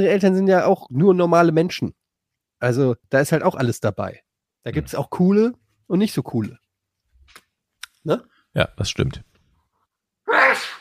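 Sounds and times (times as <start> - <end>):
speech: 0.0 - 2.0, 2.6 - 6.6, 8.0 - 9.3
person sneezing: 10.3 - 10.7.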